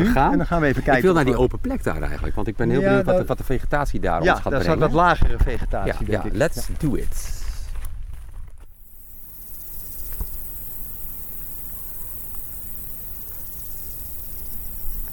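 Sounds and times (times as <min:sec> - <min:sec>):
speech: 0:00.1 - 0:07.4
loud chorus of crickets in tall grass: 0:08.7 - 0:15.1.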